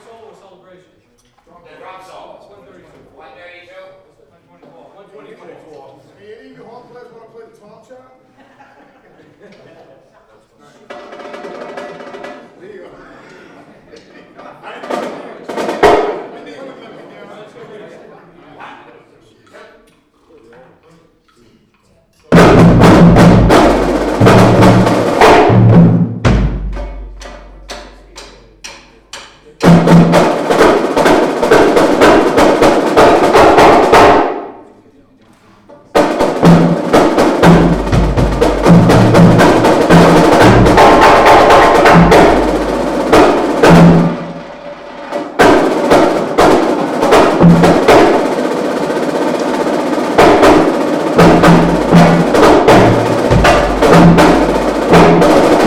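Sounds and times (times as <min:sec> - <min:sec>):
laughter: 0:08.3 - 0:10.4, 0:12.6 - 0:19.2
drum solo in ensemble practice: 0:14.9 - 0:16.3, 0:22.3 - 0:34.5, 0:35.9 - 0:55.6.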